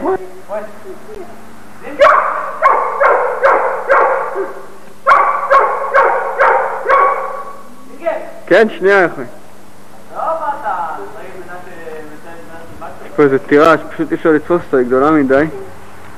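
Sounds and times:
speech: 0.0s - 2.0s, 8.5s - 9.4s, 13.2s - 15.6s
dog barking in a castle: 2.0s - 7.7s.

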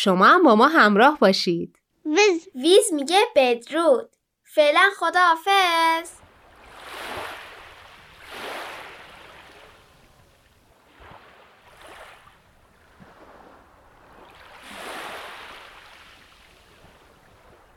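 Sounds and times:
speech: 0.0s - 6.2s
sea waves washing in and receding: 5.7s - 17.7s
steady hiss of surf: 6.5s - 13.6s, 14.2s - 17.7s.

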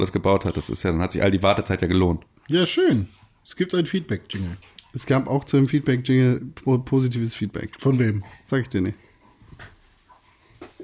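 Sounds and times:
speech: 0.0s - 9.7s
dog panting: 7.8s - 10.8s.

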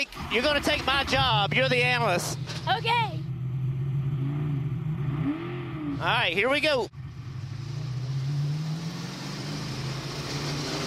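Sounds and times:
speech: 0.0s - 3.2s, 6.0s - 7.0s
car engine droning while accelerating: 0.0s - 10.8s
road and wind noise: 0.0s - 10.8s.

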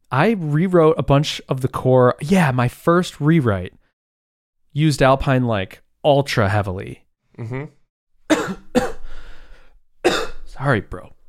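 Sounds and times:
speech: 0.1s - 3.8s, 4.7s - 8.9s, 10.6s - 11.2s
person coughing from carbonated seltzer: 7.4s - 9.1s, 10.0s - 10.5s.

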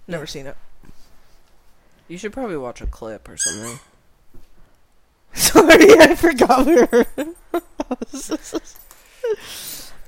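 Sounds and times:
speech: 0.1s - 0.7s, 2.1s - 3.9s, 5.4s - 9.8s
dog playing with a squeaky toy: 3.4s - 4.0s
laughter: 5.4s - 8.7s.

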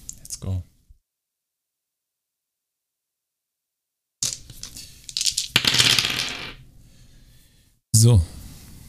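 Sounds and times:
several dice clattering across a hard surface: 4.2s - 6.6s
speech: 8.0s - 8.4s.

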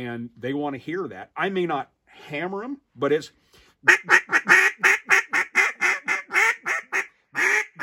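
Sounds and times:
speech: 0.0s - 4.6s
duck hen quacking on a marsh: 3.9s - 7.8s.

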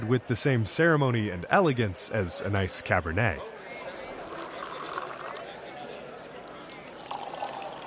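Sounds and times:
soft murmur of voices: 0.0s - 7.8s
speech: 0.1s - 3.8s
tap water poured from heavy bottles into stemmed glasses: 4.2s - 5.6s, 6.4s - 7.8s.

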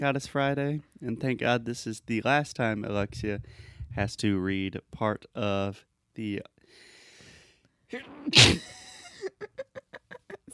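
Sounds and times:
speech: 0.0s - 6.5s, 7.9s - 8.8s
sneeze: 8.0s - 8.8s
person laughing in short rhythmic laughs: 8.4s - 10.5s.

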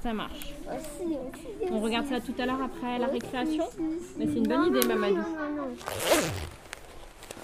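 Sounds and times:
speech: 0.0s - 6.6s
coat zipper rasping: 5.8s - 6.7s.

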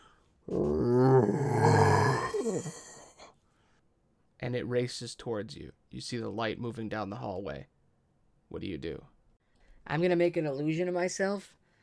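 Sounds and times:
horrifying monster howling and snarling in the darkness: 0.5s - 3.2s
speech: 4.4s - 7.7s, 8.5s - 9.1s, 9.8s - 11.6s.

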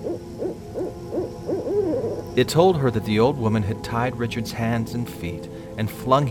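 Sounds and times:
owl hooting: 0.0s - 3.8s
speech: 2.4s - 6.2s.

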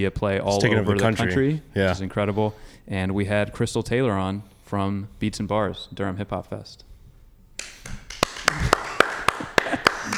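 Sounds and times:
speech: 0.0s - 6.9s
brief round of applause from a few people: 7.6s - 10.1s.

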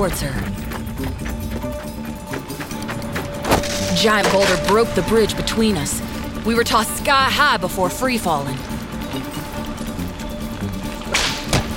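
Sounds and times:
speech: 0.0s - 1.5s, 4.0s - 9.2s
music: 0.0s - 11.7s
whip cracking: 11.1s - 11.7s.

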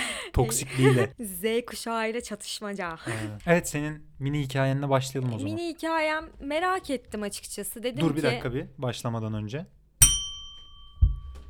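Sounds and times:
speech: 0.4s - 9.8s
laughter: 0.5s - 1.2s
bright starting bell struck: 10.0s - 11.4s
dull knock: 10.0s - 11.4s.

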